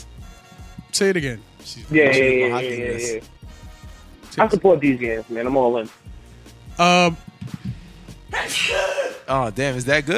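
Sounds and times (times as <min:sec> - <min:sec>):
speech: 0:01.0 - 0:03.4, 0:04.4 - 0:06.0, 0:06.8 - 0:07.3, 0:08.5 - 0:10.1
loud sneeze: 0:08.3 - 0:09.3.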